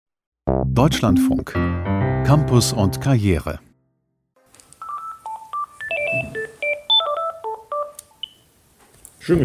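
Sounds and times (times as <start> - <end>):
speech: 0.7 - 3.7, 9.3 - 9.4
telephone touch-tone beeps: 4.8 - 8.4.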